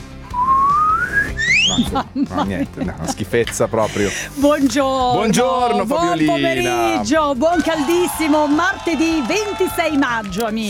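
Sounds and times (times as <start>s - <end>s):
rising human whistle: 0.3s - 2.0s
laughter: 1.6s - 4.4s, 5.0s - 7.0s
speech: 1.7s - 10.6s.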